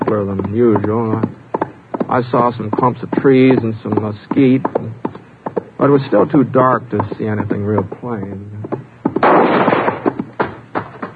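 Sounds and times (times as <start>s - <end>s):
speech: 0.1s - 1.4s, 2.1s - 4.8s, 5.8s - 8.8s
gunshots in a canyon: 9.2s - 10.6s.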